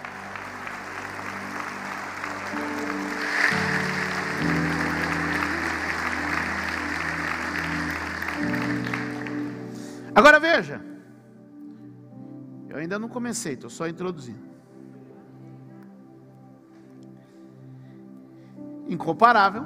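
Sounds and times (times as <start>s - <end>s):
congregation applauding: 0.0s - 10.5s
sustained keyboard chords: 0.0s - 19.6s
speech: 10.2s - 10.9s, 12.8s - 14.5s, 18.9s - 19.6s.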